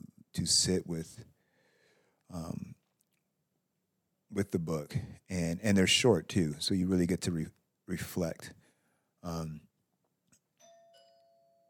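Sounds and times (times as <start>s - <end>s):
speech: 0.4s - 1.3s, 4.3s - 8.6s, 9.2s - 9.7s
electronic doorbell chiming: 10.6s - 11.6s.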